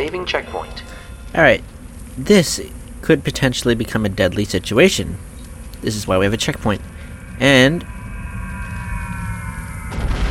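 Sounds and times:
speech: 0:00.0 - 0:08.0
steady tonal hum in a video game: 0:00.0 - 0:10.2
video game explosion deep boom with low rumble: 0:06.8 - 0:10.2.

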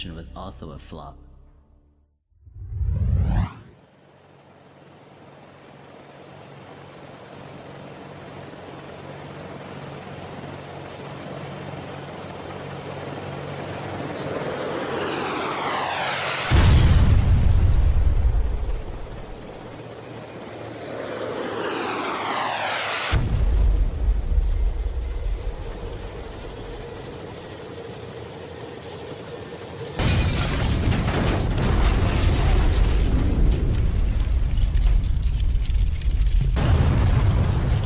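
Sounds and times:
speech: 0:00.0 - 0:01.3
rescue helicopter engine roaring and whining: 0:03.4 - 0:30.2
heavy booming crashes and explosions of a helicopter: 0:14.2 - 0:19.8, 0:21.1 - 0:27.4, 0:29.9 - 0:37.8.

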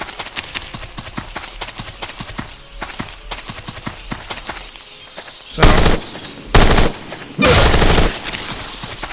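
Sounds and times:
assault rifle automatic gunfire in a video game: 0:05.6 - 0:06.0, 0:06.6 - 0:08.3.

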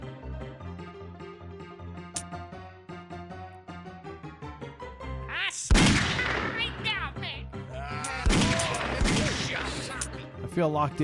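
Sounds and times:
steady musical backing: 0:00.0 - 0:11.0
gunshots: 0:05.7 - 0:06.8, 0:08.2 - 0:10.0.

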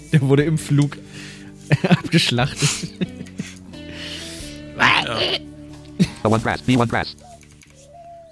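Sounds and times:
speech: 0:00.1 - 0:03.1, 0:05.1 - 0:05.5, 0:06.2 - 0:07.3
laughter: 0:01.6 - 0:03.8
pigeon cooing: 0:07.2 - 0:08.2.

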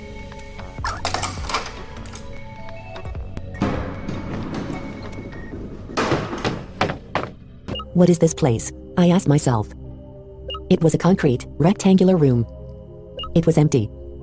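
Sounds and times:
key turning in a heavy prison door lock: 0:00.8 - 0:03.2
prison door clunk: 0:00.8 - 0:07.5
sharp metallic clanks and rattles of a prison door lock: 0:00.8 - 0:07.5
heavy prison door grinding open with a scraping slide: 0:03.5 - 0:07.4
speech: 0:08.0 - 0:09.8, 0:10.7 - 0:12.5, 0:13.3 - 0:14.0.

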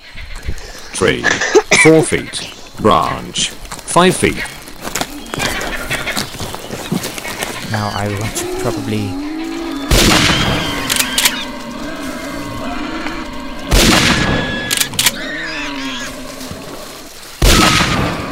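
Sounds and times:
ambient hunting video game sound: 0:00.0 - 0:18.2
laughter: 0:01.0 - 0:02.0
speech: 0:01.0 - 0:04.6, 0:07.7 - 0:09.2
gunshots fired from a tree in a hunting video game: 0:09.9 - 0:11.4, 0:13.7 - 0:15.2, 0:17.4 - 0:18.2.

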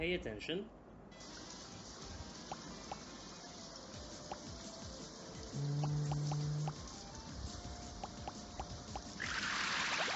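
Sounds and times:
steady synthetic rain hiss in a video game: 0:01.1 - 0:10.1
low humming buzz: 0:05.4 - 0:09.2
bright splash of noise: 0:09.2 - 0:10.1.

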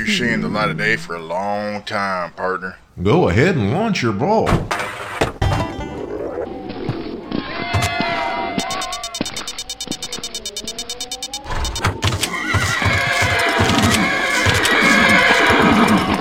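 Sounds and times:
horses neighing and whinnying: 0:00.0 - 0:01.3, 0:06.4 - 0:16.1
speech: 0:00.0 - 0:04.9
horse hooves clip-clopping: 0:06.7 - 0:16.1.

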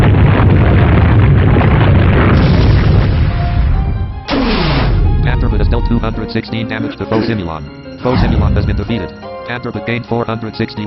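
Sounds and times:
video game earthquake attack rumbling roar with heavy low-end booming: 0:00.0 - 0:06.2
speech: 0:06.0 - 0:10.8.

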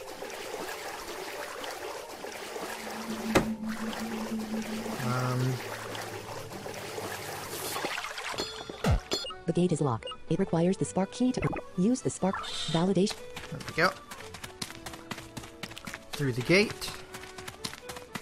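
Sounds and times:
video game character swimming through water with swishing and sloshing: 0:00.0 - 0:08.8
low electronic tones and hums: 0:02.7 - 0:06.7
speech: 0:09.6 - 0:14.0, 0:16.2 - 0:16.9.

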